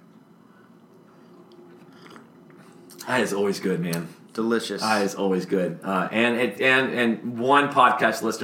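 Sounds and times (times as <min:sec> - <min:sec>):
person sipping hot coffee from a mug: 0:01.1 - 0:03.0
speech: 0:03.1 - 0:08.4.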